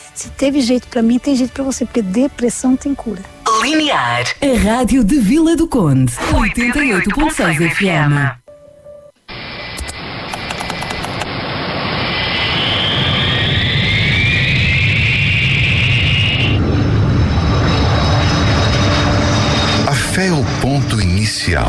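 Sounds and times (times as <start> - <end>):
speech: 0.2 - 8.4, 21.5 - 21.6
airplane jet engines roaring on takeoff: 9.3 - 21.6.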